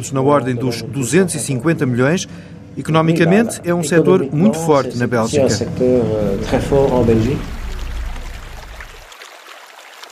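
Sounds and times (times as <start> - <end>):
speech: 0.0 - 7.6
stream water rushing with gurgle and low rumble: 6.2 - 10.1.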